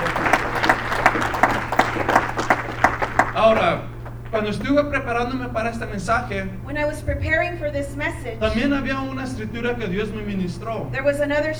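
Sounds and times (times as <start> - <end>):
congregation clapping together during praise at a bilingual church service: 0.0 - 7.0, 8.0 - 11.5
laughter: 0.0 - 11.5
low constant hum: 0.0 - 11.5
speech: 3.5 - 11.5.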